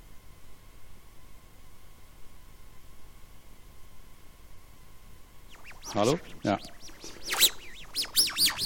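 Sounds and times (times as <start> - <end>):
birds chirping: 5.5 - 8.6
speech: 5.9 - 6.8.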